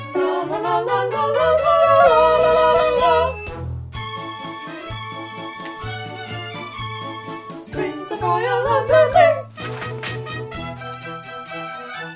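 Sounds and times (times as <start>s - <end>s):
soprano voice on a practice track: 0.1s - 3.3s, 7.5s - 10.0s.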